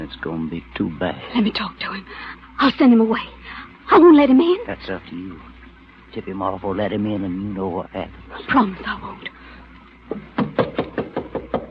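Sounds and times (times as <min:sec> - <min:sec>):
speech: 0:00.1 - 0:05.5, 0:06.1 - 0:09.5
firm knocking on a door: 0:10.1 - 0:11.6.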